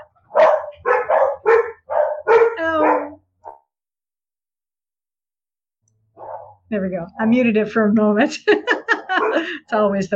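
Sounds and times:
dogs barking and yelping: 0.0s - 3.7s, 6.2s - 6.6s, 8.6s - 9.5s
speech: 6.7s - 8.7s, 9.4s - 10.1s
laughter: 8.3s - 9.7s.

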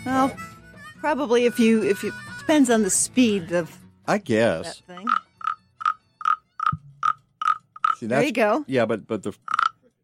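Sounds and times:
speech: 0.0s - 5.2s, 8.0s - 9.6s
toy frog croaking: 5.0s - 8.1s, 9.4s - 9.9s.

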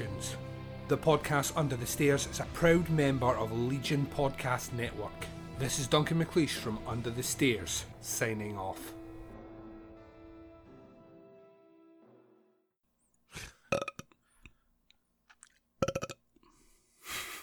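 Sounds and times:
speech: 0.9s - 9.0s
long loud burp with deep croaky drone: 13.3s - 14.2s, 15.8s - 16.2s.

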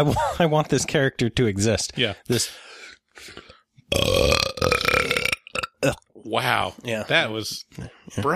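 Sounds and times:
speech: 0.0s - 4.4s, 5.8s - 8.3s
soft breathy sounds: 2.2s - 3.8s
long loud deliberate belch: 3.9s - 6.1s.

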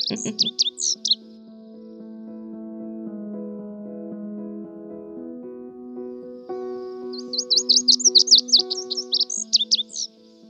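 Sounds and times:
laughter: 0.0s - 0.5s
snow bunting singing: 0.0s - 1.3s, 6.6s - 10.4s
soft sustained instrumental music: 0.0s - 10.4s
speech: 0.1s - 1.0s.

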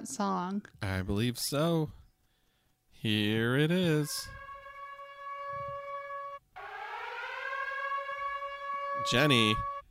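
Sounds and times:
speech: 0.1s - 2.0s, 3.0s - 4.4s, 9.0s - 9.7s
siren wailing: 3.7s - 9.9s.

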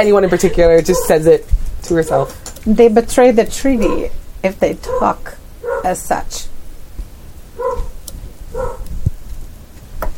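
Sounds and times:
speech: 0.0s - 6.5s
pet dog giving short tonal barks: 0.9s - 1.2s, 3.8s - 4.1s, 4.8s - 6.0s, 7.6s - 8.9s.

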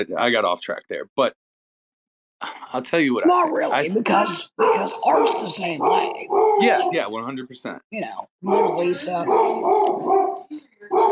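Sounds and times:
speech: 0.0s - 1.4s, 2.4s - 11.0s
beagle baying and barking: 4.8s - 7.0s, 8.5s - 11.0s.

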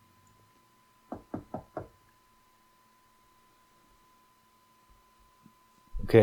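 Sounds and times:
faint steady hum: 0.0s - 6.2s
firm knocks on a door: 1.1s - 2.0s.

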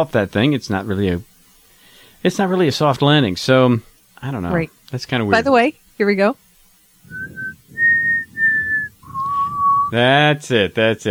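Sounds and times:
speech: 0.0s - 1.3s, 2.2s - 6.4s, 9.9s - 11.0s
breathy low rumble: 7.0s - 9.9s
person whistling a short four-note melody: 7.1s - 10.0s.

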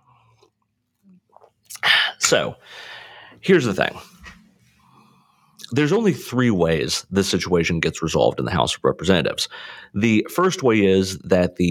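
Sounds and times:
person sipping coffee: 0.0s - 2.2s
speech: 2.3s - 4.1s, 5.7s - 11.6s.

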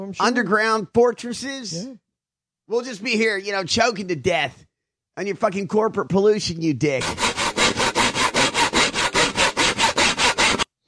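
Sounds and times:
speech: 0.0s - 2.0s, 2.7s - 7.3s
saw cutting through wood: 7.0s - 10.7s.

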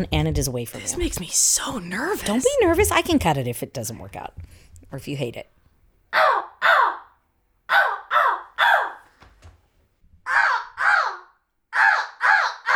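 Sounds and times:
speech: 0.0s - 6.2s
person imitating a crow's caw: 6.1s - 9.1s, 10.3s - 12.7s.

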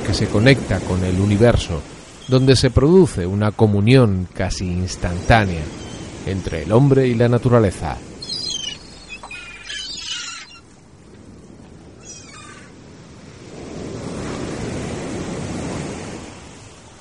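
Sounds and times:
heavy surf of giant Atlantic Ocean waves crashing on the north beach: 0.0s - 16.9s
wind: 0.0s - 16.9s
speech: 0.1s - 8.1s
high-pitched bird-like cries: 8.2s - 10.7s, 12.0s - 12.7s.

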